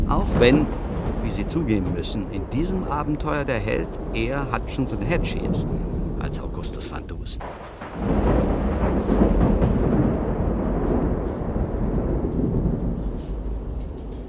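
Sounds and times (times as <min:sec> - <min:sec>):
deep rolling thunder over the port of Bastia: 0:00.0 - 0:14.2
heavy rain over the port of Bastia: 0:00.0 - 0:14.2
speech: 0:00.1 - 0:09.5.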